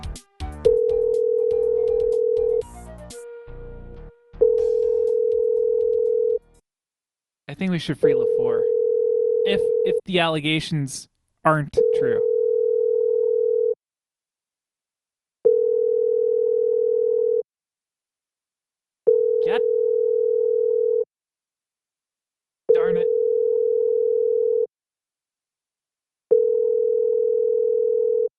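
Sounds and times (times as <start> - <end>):
telephone ringback tone from an unanswered call: 0.6 - 2.6, 4.4 - 6.4, 8.2 - 9.9, 11.8 - 13.8, 15.5 - 17.4, 19.1 - 21.0, 22.8 - 24.7, 26.3 - 28.3
speech: 7.6 - 8.8, 9.4 - 12.3.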